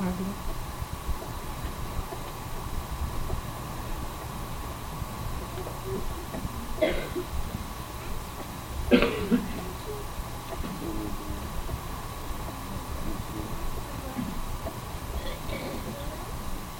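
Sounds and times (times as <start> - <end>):
steady hum: 0.0 - 16.7
person coughing: 6.8 - 7.3, 8.9 - 9.8, 15.2 - 15.9.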